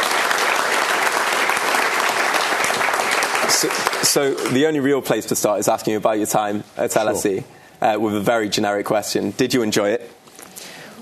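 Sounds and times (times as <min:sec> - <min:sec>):
audience applause welcoming the speakers: 0:00.0 - 0:04.6
speech: 0:03.5 - 0:10.2.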